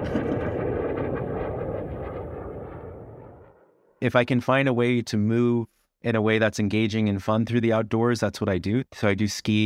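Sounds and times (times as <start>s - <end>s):
F-16 fighter jet flying at full throttle: 0.0s - 3.6s
speech: 4.0s - 9.6s.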